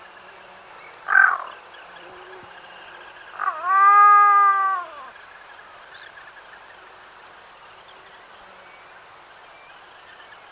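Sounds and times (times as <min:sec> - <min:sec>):
black-throated loon wailing: 0:03.4 - 0:05.1.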